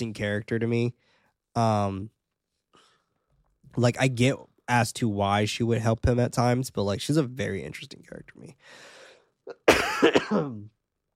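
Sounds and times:
speech: 0:00.0 - 0:02.2, 0:03.7 - 0:08.9, 0:09.5 - 0:10.8
intake of breath: 0:08.6 - 0:09.4
person coughing: 0:09.5 - 0:10.7.

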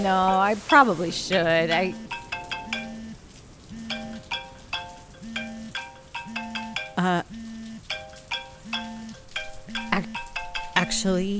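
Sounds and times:
speech: 0:00.0 - 0:02.2, 0:07.0 - 0:07.4, 0:11.0 - 0:11.3
constant hissing noise: 0:00.0 - 0:11.3
mobile phone ringtone electronic melody: 0:01.7 - 0:11.3.

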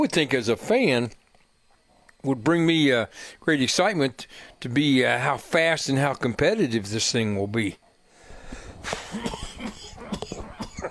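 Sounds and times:
speech: 0:00.0 - 0:01.2, 0:02.2 - 0:07.8, 0:08.8 - 0:09.4
raspy breathing: 0:03.1 - 0:03.4, 0:04.3 - 0:04.6, 0:08.0 - 0:10.5
person coughing: 0:08.9 - 0:10.8.

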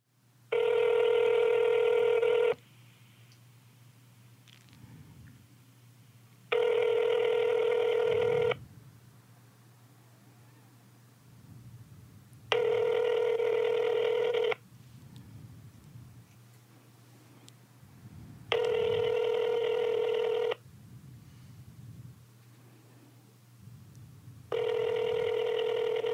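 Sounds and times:
low steady hum: 0:00.0 - 0:26.1
phone ringback tone of an unanswered call: 0:00.5 - 0:02.6, 0:06.5 - 0:08.6, 0:12.5 - 0:14.6, 0:18.5 - 0:20.6, 0:24.5 - 0:26.1.

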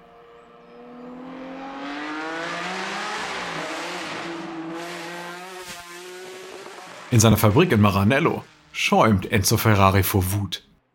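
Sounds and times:
Bizzarini V12 engine of Lamborghini's first sports car revving: 0:00.0 - 0:07.7
speech: 0:07.1 - 0:10.7.

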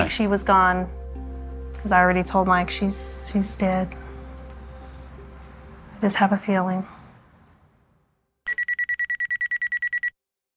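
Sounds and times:
speech: 0:00.0 - 0:01.0, 0:01.8 - 0:04.0, 0:06.0 - 0:07.0
faint low noise: 0:00.0 - 0:08.2
telephone ringing with rapid electronic trilling: 0:08.5 - 0:10.1.

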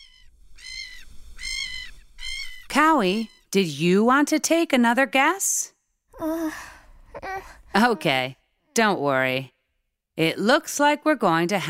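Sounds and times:
seagull calls: 0:00.0 - 0:03.4
speech: 0:02.8 - 0:09.6, 0:10.2 - 0:11.6.

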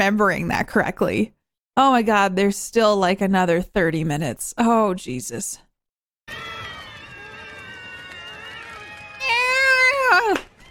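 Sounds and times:
speech: 0:00.0 - 0:05.7
cat meowing: 0:09.2 - 0:10.2.

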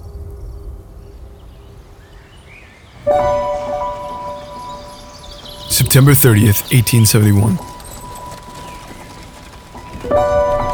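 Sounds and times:
speech: 0:05.7 - 0:07.7
black and tan horse hooves clip-clopping pulling an old carnival carriage: 0:07.7 - 0:10.7.

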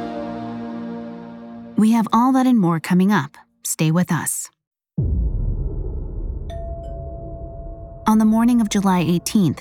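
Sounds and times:
speech: 0:01.8 - 0:05.2, 0:08.1 - 0:09.5
steady heavy low rumble: 0:05.0 - 0:09.5
two-note ding-dong doorbell chime: 0:06.5 - 0:09.5.

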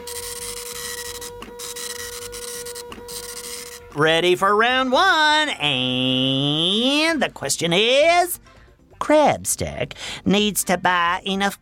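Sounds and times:
printer printing out a page: 0:00.0 - 0:04.0
speech: 0:04.0 - 0:08.4, 0:09.1 - 0:11.6.

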